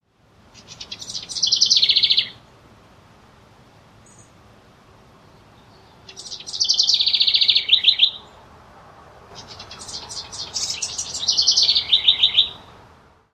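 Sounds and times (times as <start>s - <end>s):
house wren: 0.5s - 2.4s, 4.0s - 4.4s, 5.2s - 8.5s, 9.3s - 12.8s.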